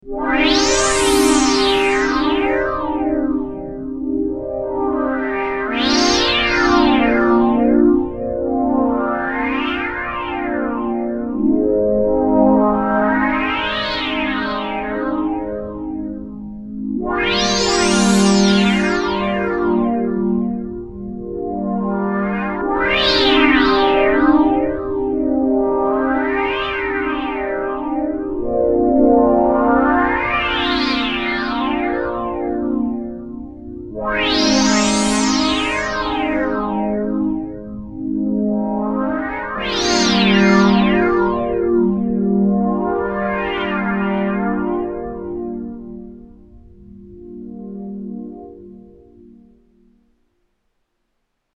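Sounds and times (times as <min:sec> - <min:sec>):
JU-06 synthesizer pad: 0:00.0 - 0:50.1.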